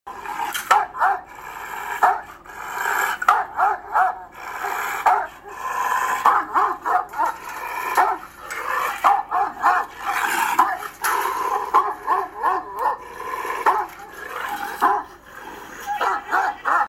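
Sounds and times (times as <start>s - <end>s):
dog barking: 0.6s - 1.3s, 2.0s - 2.3s, 3.2s - 4.3s, 5.0s - 8.3s, 8.9s - 15.2s, 15.8s - 16.8s.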